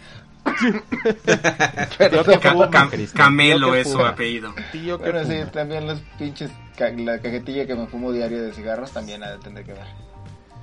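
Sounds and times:
harsh rapid coughs: 0.4s - 1.2s
person laughing: 0.5s - 2.4s
speech: 0.6s - 10.1s.

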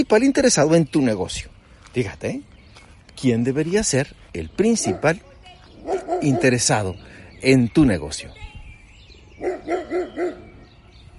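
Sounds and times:
speech: 0.0s - 2.5s, 3.2s - 5.3s, 6.2s - 8.5s, 9.4s - 10.4s
dog barking: 4.7s - 5.2s, 5.8s - 6.8s, 9.4s - 10.5s.

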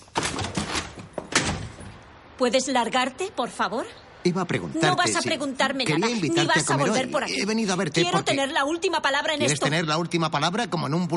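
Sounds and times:
door latch and handle clunking and rattling: 0.0s - 2.0s
speech: 2.4s - 11.1s.

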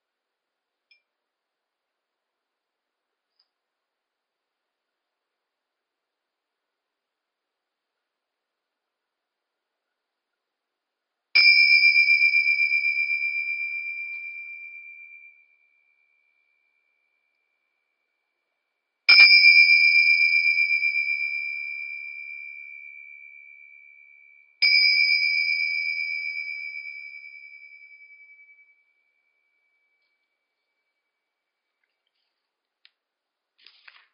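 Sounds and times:
meditation bells ringing: 11.4s - 18.3s, 19.1s - 31.3s.

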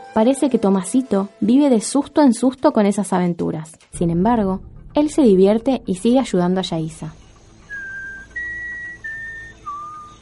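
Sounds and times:
speech: 0.2s - 7.2s
person whistling clear sustained notes: 7.7s - 10.2s.

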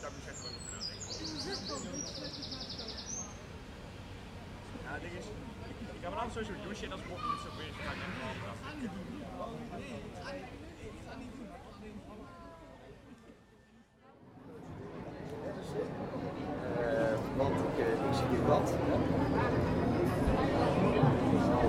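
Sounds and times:
birds singing in rapid trills and chirps: 0.0s - 3.5s
crowd chatter outdoors: 0.0s - 21.6s.

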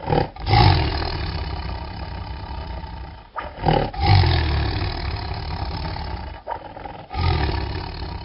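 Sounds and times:
tiger roaring: 0.0s - 8.2s.

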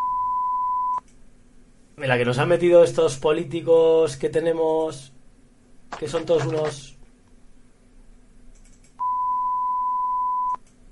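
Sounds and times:
high-pitched censor bleep tone: 0.0s - 1.0s, 9.0s - 10.6s
speech: 2.0s - 5.1s, 5.9s - 7.0s.

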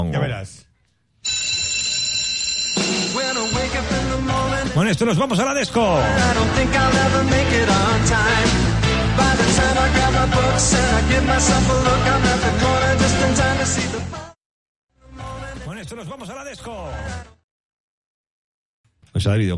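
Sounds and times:
speech: 0.0s - 0.6s, 3.8s - 14.2s, 15.9s - 17.3s, 19.2s - 19.5s
loud upbeat TV sitcom theme song: 2.8s - 14.4s.

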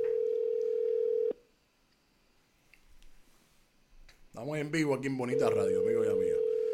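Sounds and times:
telephone dial tone while calling a guest: 0.0s - 1.4s, 5.3s - 6.7s
faint noise: 0.0s - 6.7s
speech: 4.4s - 6.4s.

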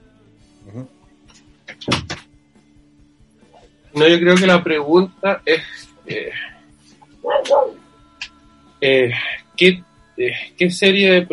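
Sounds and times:
speech: 0.6s - 1.0s, 4.0s - 6.5s, 8.8s - 11.3s
solid door thuds: 1.7s - 2.2s.

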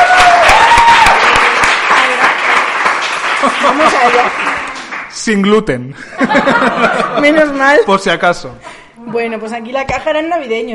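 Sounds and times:
loud dense crowd applause: 0.0s - 5.2s
laughter: 3.3s - 4.6s, 6.0s - 7.9s
speech: 3.6s - 4.5s, 5.2s - 10.7s.

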